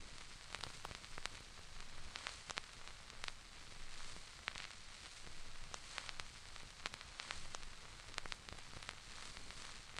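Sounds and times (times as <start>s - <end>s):
vinyl record crackle effect: 0.0s - 9.9s.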